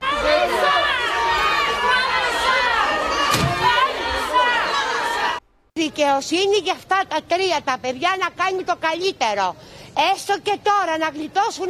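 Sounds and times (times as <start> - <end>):
large crowd clamoring outside a house: 0.0 - 5.4
raised shouts from a crowd: 0.0 - 5.4
speech: 5.8 - 11.6.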